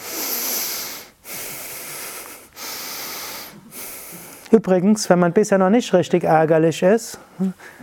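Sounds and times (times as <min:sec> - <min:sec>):
shallow rapid breathing high in the chest: 0:00.0 - 0:04.6
speech: 0:04.5 - 0:07.8.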